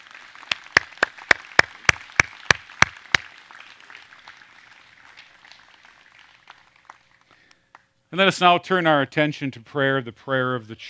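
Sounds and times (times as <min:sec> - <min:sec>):
sharp steady claps: 0:00.0 - 0:07.9
speech: 0:08.1 - 0:10.8.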